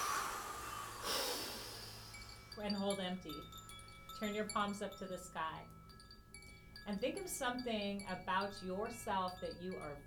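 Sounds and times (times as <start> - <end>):
forceful exhale through the mouth during a guided breathing exercise: 0.0 - 2.5
speech: 2.6 - 3.6, 4.2 - 5.8, 6.8 - 10.0.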